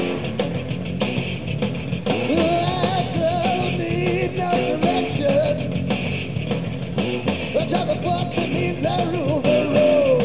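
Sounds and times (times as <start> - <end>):
song: 0.0 - 10.2.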